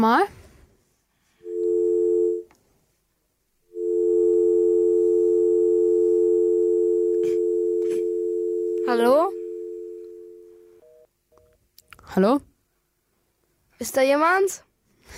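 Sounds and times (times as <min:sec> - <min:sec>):
speech: 0:00.0 - 0:00.4, 0:08.9 - 0:09.4, 0:12.2 - 0:12.5, 0:13.8 - 0:15.1
telephone tone for an incoming call: 0:01.4 - 0:02.5, 0:03.7 - 0:11.1.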